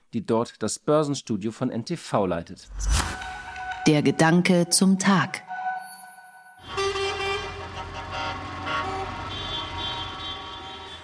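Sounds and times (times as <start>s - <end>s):
speech: 0.1s - 3.2s, 3.9s - 5.5s
car and truck horns honking from a vehicle convoy at a street protest: 6.6s - 11.0s.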